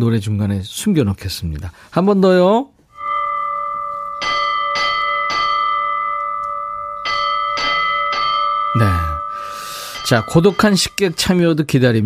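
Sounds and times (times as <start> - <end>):
speech: 0.0 - 2.7, 10.1 - 12.0
rural school bell ringing: 2.9 - 11.6.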